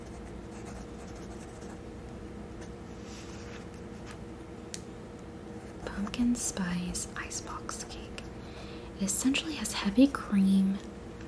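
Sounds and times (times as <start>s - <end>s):
pencil writing on paper: 0.0s - 1.8s
speech: 6.0s - 8.3s, 9.0s - 11.0s.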